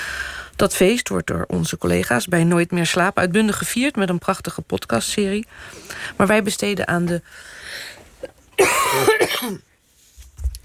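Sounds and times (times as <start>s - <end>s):
speech: 0.6s - 9.7s
person coughing in a radio studio: 8.6s - 9.7s.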